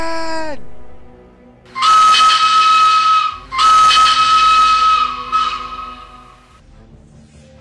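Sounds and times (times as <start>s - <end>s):
loud steam locomotive whistle: 1.7s - 6.6s.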